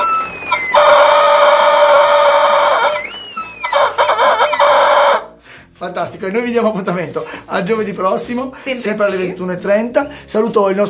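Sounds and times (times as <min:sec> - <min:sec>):
rooster crowing: 0:00.0 - 0:05.3
speech: 0:05.9 - 0:10.8.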